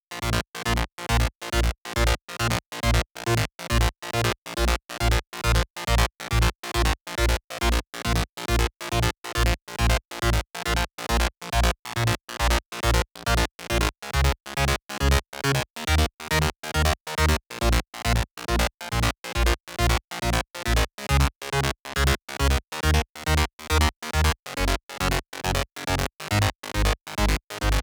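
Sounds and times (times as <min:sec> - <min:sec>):
bassline in A sharp minor: 0:00.1 - 0:27.8.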